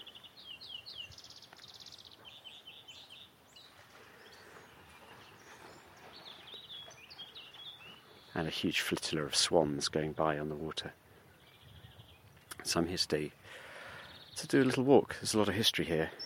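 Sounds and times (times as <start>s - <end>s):
wild greenfinch singing in spring by Llangorse Lake, Brecon Beacons, Wales: 0.0s - 16.2s
speech: 8.4s - 11.0s, 12.7s - 13.6s, 14.4s - 16.2s.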